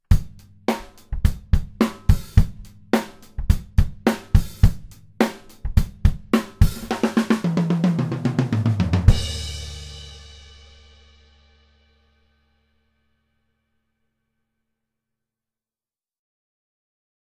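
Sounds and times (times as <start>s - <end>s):
drums recorded by overhead microphones: 0.0s - 12.0s.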